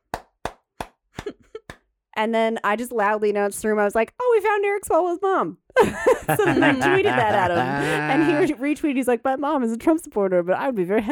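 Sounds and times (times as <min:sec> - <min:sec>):
hand claps from a group watching a debate: 0:00.0 - 0:01.8
speech: 0:02.2 - 0:11.0
laughter: 0:05.8 - 0:08.6.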